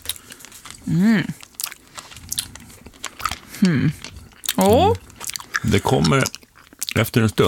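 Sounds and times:
person chewing hard caramel candy: 0.0s - 7.4s
person humming: 0.8s - 1.4s, 3.6s - 4.0s
speech: 0.9s - 1.4s, 3.6s - 5.0s, 5.7s - 6.4s, 7.0s - 7.4s.

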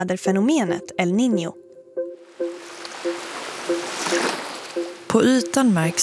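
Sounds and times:
speech: 0.0s - 1.6s, 5.2s - 6.0s
calm ocean waves lapping in the open: 2.0s - 6.0s.

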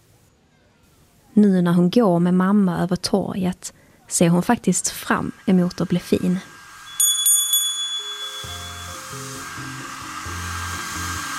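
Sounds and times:
speech: 1.4s - 6.5s
whirring hum: 4.2s - 11.3s
shop door bell chiming on entry: 6.9s - 9.8s
low droning tones: 6.9s - 10.8s.

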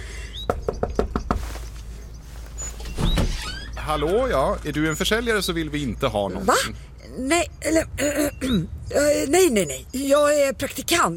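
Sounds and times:
knocking on a door: 0.5s - 1.6s
speech: 3.9s - 11.1s.

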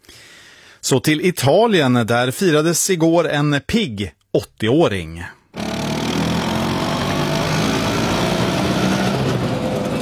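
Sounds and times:
speech: 0.8s - 5.4s
two-stroke engine of an Italian Piaggio Vespa scooter running: 5.6s - 10.0s.

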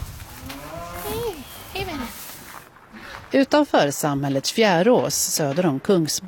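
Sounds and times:
cows mooing: 0.4s - 1.6s
speech: 3.3s - 6.2s.

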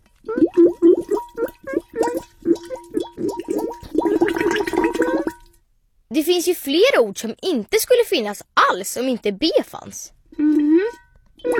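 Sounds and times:
voice imitating bubbling gargling water: 0.2s - 5.4s, 10.4s - 11.5s
speech: 6.2s - 11.5s.

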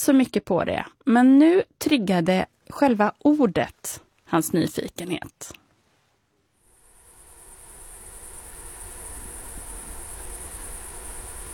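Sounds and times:
speech: 0.0s - 5.6s
insects humming in a lakeside forest by Hjälmaren on a dark August evening: 6.6s - 11.5s.

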